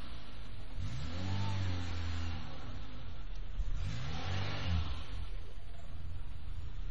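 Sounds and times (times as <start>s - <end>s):
car engine revving while mounting a sidewalk curb: 0.0s - 6.8s.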